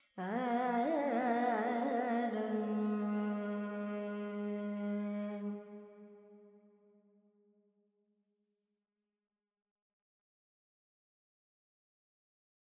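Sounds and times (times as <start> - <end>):
Carnatic female vocal alap in Dorian with reverb: 0.0 - 6.1.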